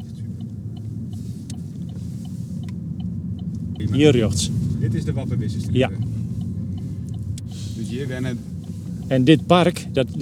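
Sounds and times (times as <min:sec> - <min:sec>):
engine rumble and road noise inside a moving car: 0:00.0 - 0:10.1
speech: 0:03.8 - 0:06.0, 0:08.0 - 0:08.5, 0:09.1 - 0:10.1.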